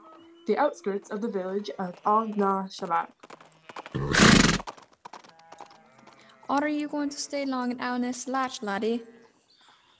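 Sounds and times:
speech: 0.5s - 4.1s, 6.5s - 9.2s
hooves of a donkey pulling a cart clip-clopping in Scotland: 1.8s - 6.2s
donkey braying: 4.0s - 4.6s.

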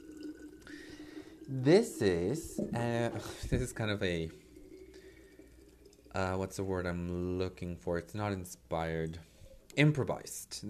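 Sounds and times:
water trickling into a cup: 0.0s - 7.4s
speech: 1.5s - 4.4s, 6.1s - 10.6s.

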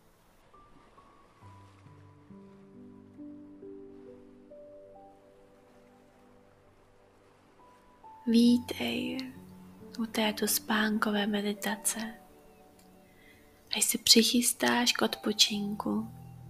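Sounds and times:
gentle ocean waves washing onto the shore: 0.0s - 12.3s
slow sustained ambient music tones: 0.2s - 16.4s
speech: 8.3s - 9.4s, 10.0s - 12.2s, 13.8s - 16.2s.

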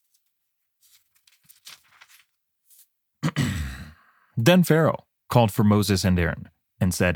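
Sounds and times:
page being flipped over: 0.0s - 2.9s
soft faint rustling of paper: 0.0s - 3.0s
speech: 4.4s - 7.1s.

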